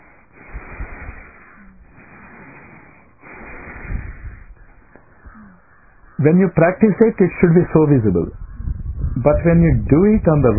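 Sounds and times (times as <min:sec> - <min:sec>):
slow deep belly breathing: 0:00.0 - 0:06.0
speech: 0:06.2 - 0:08.4, 0:09.2 - 0:10.5.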